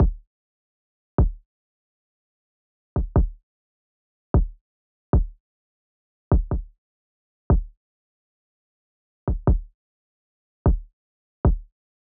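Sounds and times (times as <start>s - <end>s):
kick drum: 0.0s - 0.2s, 1.2s - 1.4s, 3.0s - 3.4s, 4.4s - 4.6s, 5.2s - 5.4s, 6.3s - 6.7s, 7.5s - 7.8s, 9.3s - 9.8s, 10.7s - 11.7s.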